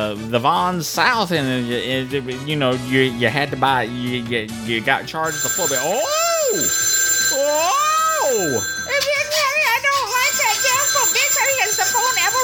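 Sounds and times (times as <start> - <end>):
speech: 0.0 - 9.9
electronic telephone ringing with warbling trill: 5.2 - 12.4.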